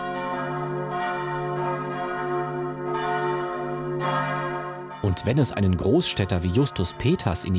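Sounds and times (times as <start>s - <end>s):
large bronze church bell from Cologne ringing: 0.0s - 7.5s
speech: 5.0s - 7.5s.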